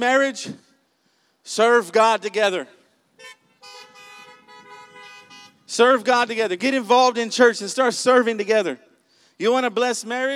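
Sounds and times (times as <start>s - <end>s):
speech: 0.0s - 0.7s, 1.4s - 3.4s, 5.7s - 10.3s
car horns honking: 3.2s - 5.7s.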